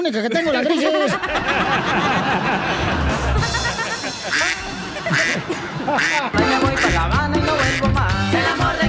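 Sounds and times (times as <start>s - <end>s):
speech: 0.0s - 3.6s, 4.2s - 8.7s
laughter: 0.0s - 7.9s
duck quacking: 4.2s - 8.2s.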